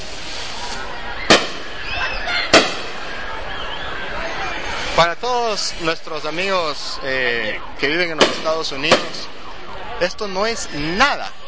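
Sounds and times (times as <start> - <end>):
stick rocket fireworks exploding at the fireball festival in Nejapa: 0.0 - 3.2, 8.2 - 9.4
speech: 5.0 - 9.3, 10.0 - 11.4.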